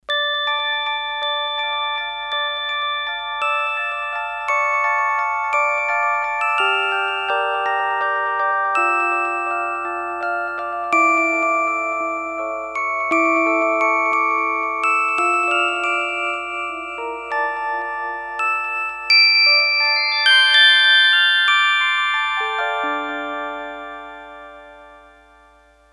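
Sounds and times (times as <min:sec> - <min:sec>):
bell: 0:00.0 - 0:25.9.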